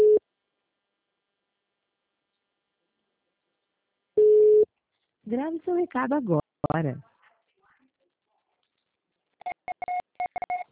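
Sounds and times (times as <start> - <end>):
short steady mid-pitched telephone beeps after a dropped call: 0.0 - 0.2, 4.2 - 4.7, 9.4 - 10.6
speech: 5.3 - 7.1.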